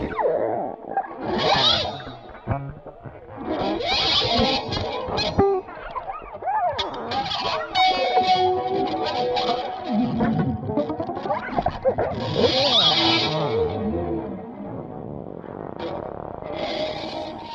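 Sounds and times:
dense electroacoustic music with distorted textures: 0.0s - 17.5s.

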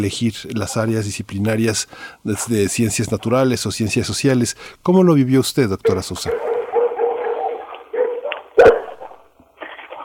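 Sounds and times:
speech: 0.0s - 6.5s
several dogs barking and growling while scuffling: 5.9s - 9.3s.

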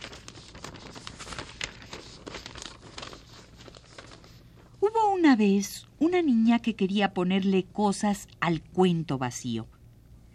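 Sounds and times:
sheets of blank paper being crumpled: 0.0s - 4.8s
speech: 4.9s - 9.7s.

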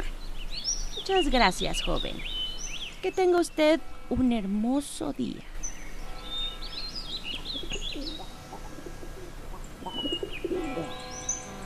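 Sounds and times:
small birds chirping and tweeting: 0.0s - 11.6s
speech: 1.1s - 2.3s, 3.0s - 5.5s
pigeons cooing in low throaty bursts: 7.0s - 11.6s.

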